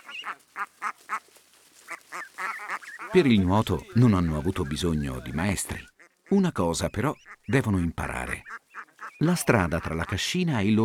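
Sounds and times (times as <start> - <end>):
faint outdoor hiss: 0.0 - 10.8
nearly adult young ducks quacking: 0.0 - 10.8
speech: 0.2 - 1.5, 3.1 - 8.6, 9.2 - 10.8.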